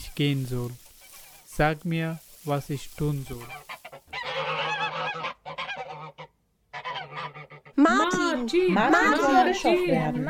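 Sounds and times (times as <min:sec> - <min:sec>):
flock of geese honking in a goose shed: 0:00.0 - 0:08.2
speech: 0:00.2 - 0:00.8, 0:01.6 - 0:03.7, 0:08.4 - 0:10.2.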